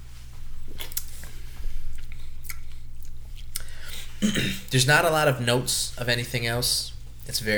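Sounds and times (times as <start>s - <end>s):
steady low hum: 0.0s - 7.5s
person sipping beer: 0.8s - 4.7s
speech: 4.2s - 7.5s.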